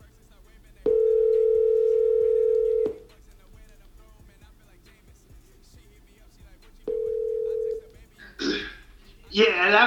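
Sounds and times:
telephone ringback tone: 0:00.9 - 0:03.0, 0:06.9 - 0:07.8
voice answering on the phone line: 0:00.9 - 0:03.0, 0:06.9 - 0:09.8.

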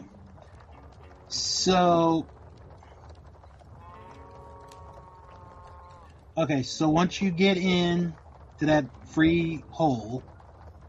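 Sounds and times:
cattle herd murmuring: 0:00.0 - 0:10.3
steady rumbling background: 0:00.0 - 0:10.8
speech: 0:01.3 - 0:02.4, 0:06.4 - 0:10.3
cattle mooing: 0:03.8 - 0:06.2.

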